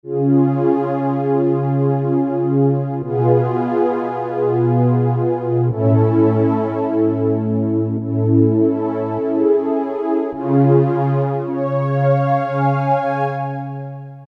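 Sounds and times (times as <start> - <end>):
Korg MS2000 synth pad: 0.1 - 14.2.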